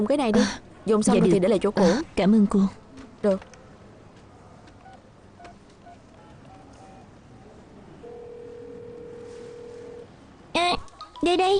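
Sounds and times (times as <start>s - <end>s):
speech: 0.0s - 3.5s, 11.3s - 11.5s
faint hum: 0.0s - 11.5s
steady continuous telephone line tone: 8.0s - 10.1s.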